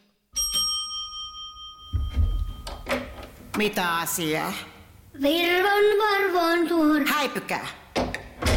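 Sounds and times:
doorbell chiming: 0:00.4 - 0:03.0
speech: 0:03.6 - 0:07.8.

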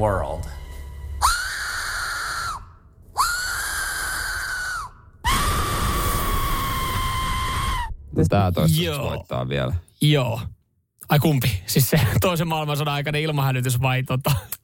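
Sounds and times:
speech: 0:00.0 - 0:00.6, 0:08.2 - 0:14.6
shrill whistle blasts: 0:00.3 - 0:08.1.

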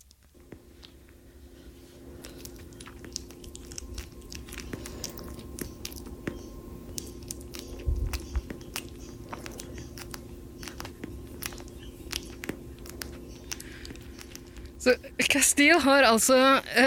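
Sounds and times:
young child chewing banana: 0:00.0 - 0:15.7
low hum: 0:00.0 - 0:16.8
soft wet smacking and squelching mouth sounds: 0:02.1 - 0:14.7
speech: 0:14.9 - 0:16.8.

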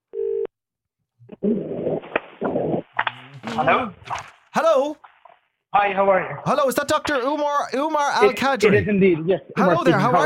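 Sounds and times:
outgoing-call telephone ringing tone: 0:00.1 - 0:00.5
speech: 0:01.4 - 0:02.0, 0:03.6 - 0:05.1, 0:05.7 - 0:10.2.

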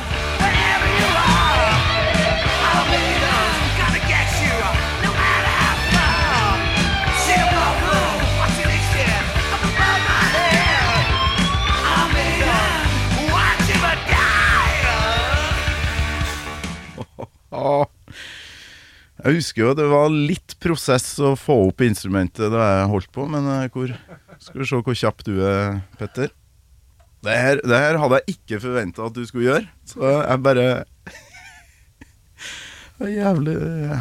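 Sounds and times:
shouted, yelling heavy metal vocals: 0:00.0 - 0:15.7
pounding heavy metal drums: 0:00.0 - 0:16.8
distorted heavy metal guitars: 0:00.0 - 0:17.1
laughter: 0:16.9 - 0:17.8, 0:23.8 - 0:24.6, 0:31.1 - 0:31.8
speech: 0:19.3 - 0:26.4, 0:27.2 - 0:31.2, 0:32.4 - 0:34.0.

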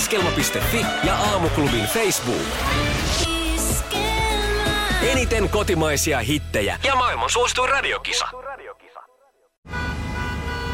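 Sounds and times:
speech: 0:00.1 - 0:04.1, 0:05.1 - 0:08.4
car horns honking in traffic jam: 0:09.6 - 0:10.7.

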